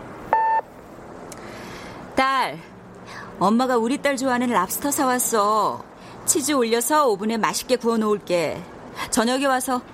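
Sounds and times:
voicemail recording electronic beep: 0.3s - 0.6s
speech: 2.2s - 9.9s.

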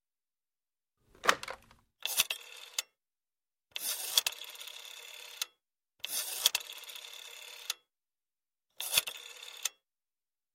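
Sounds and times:
rotary telephone at an all-night pharmacy being dialed: 1.2s - 2.8s, 3.8s - 7.8s, 8.8s - 9.8s.

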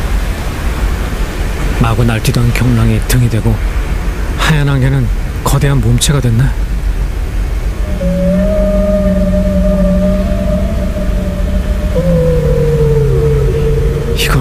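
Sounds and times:
rushing rumbling underwater-like background: 0.0s - 14.3s
speech: 1.9s - 3.8s, 4.5s - 6.7s
whale call: 7.7s - 14.3s.

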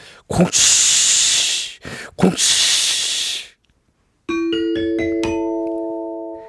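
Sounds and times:
speech: 0.3s - 0.9s, 2.2s - 2.6s
voice imitating a steam locomotive hiss: 0.3s - 3.6s
rising ding-dong-dang chime marking a correct answer: 4.3s - 6.4s.

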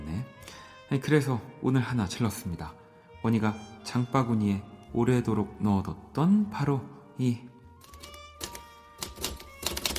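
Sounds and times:
speech: 0.9s - 7.5s
typewriter keys clacking: 7.8s - 9.9s.

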